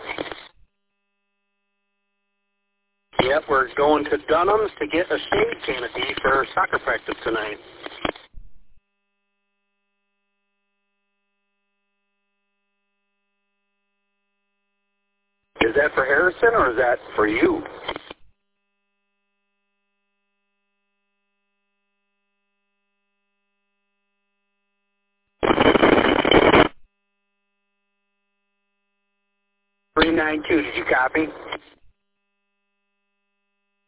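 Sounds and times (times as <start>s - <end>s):
radio static: 0.0s - 0.6s, 3.2s - 8.4s, 15.6s - 18.2s, 25.4s - 26.8s, 30.0s - 31.8s
speech: 3.3s - 7.8s, 30.3s - 31.7s.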